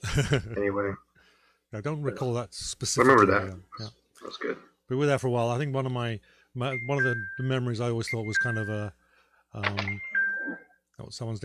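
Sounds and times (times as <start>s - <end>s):
laughter: 0.0s - 0.6s
speech: 0.2s - 1.1s, 1.7s - 11.4s
mobile phone ringtone: 6.7s - 7.5s, 9.7s - 10.8s.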